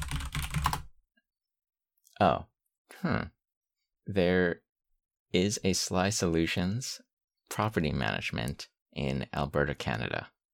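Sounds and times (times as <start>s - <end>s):
typing on a clacky computer keyboard: 0.0s - 0.9s
speech: 2.2s - 3.4s, 4.0s - 4.6s, 5.3s - 10.4s.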